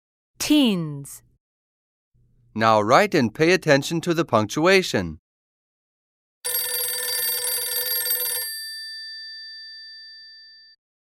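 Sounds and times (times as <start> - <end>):
speech: 0.4 - 1.3, 2.6 - 5.2
old-style telephone bell ringing: 6.5 - 10.8.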